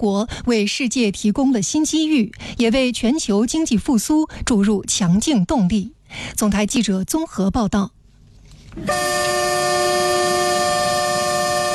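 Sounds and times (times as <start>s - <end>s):
speech: 0.0s - 8.0s, 8.8s - 9.2s
train horn blaring in a multi-tone chord: 8.8s - 11.7s.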